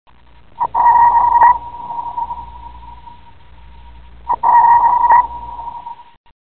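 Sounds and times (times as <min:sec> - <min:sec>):
sonar ping: 0:00.6 - 0:03.3, 0:04.3 - 0:06.2.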